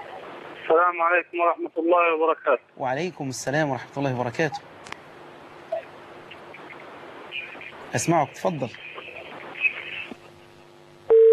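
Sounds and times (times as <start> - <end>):
faint telephone line noise: 0.0 - 11.3
speech: 0.7 - 4.8, 7.9 - 8.9
telephone busy tone after call disconnects on a call-in line: 11.1 - 11.3.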